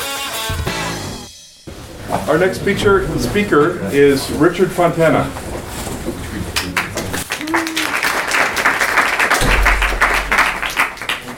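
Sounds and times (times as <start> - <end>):
speech: 2.3 - 5.4
crowd applauding for next speaker of a talk: 6.4 - 11.3
faint low thump: 9.4 - 11.0.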